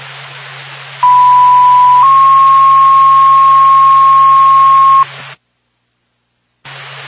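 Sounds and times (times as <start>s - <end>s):
band-limited radio hiss: 0.0s - 5.4s, 6.7s - 7.0s
fire dispatch paging tones: 1.0s - 5.0s.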